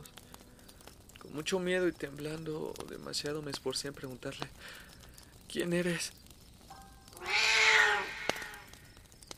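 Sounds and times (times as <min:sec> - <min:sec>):
speech: 0:01.3 - 0:04.9, 0:05.5 - 0:06.2
cat meowing: 0:07.2 - 0:08.7.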